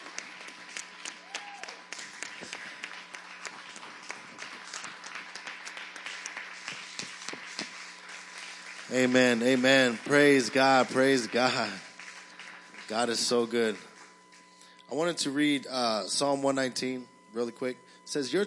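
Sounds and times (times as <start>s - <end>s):
audience applauding with dense overlapping claps: 0.0s - 14.1s
faint hum: 0.0s - 18.4s
speech: 8.9s - 11.9s, 12.9s - 13.9s, 14.9s - 18.4s.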